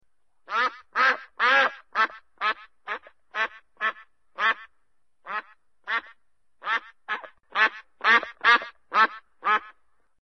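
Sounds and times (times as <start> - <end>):
duck: 0.5 - 9.8.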